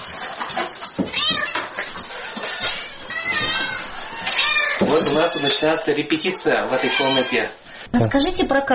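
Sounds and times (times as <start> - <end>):
busy indoor noise: 0.0 - 8.7
domestic cat meowing: 2.3 - 5.8, 6.6 - 7.6
speech: 5.0 - 8.7.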